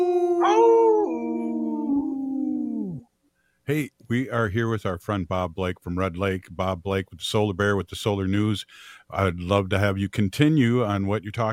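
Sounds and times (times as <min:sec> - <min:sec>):
Minnesota wolf howling: 0:00.0 - 0:03.0
speech: 0:03.7 - 0:11.5.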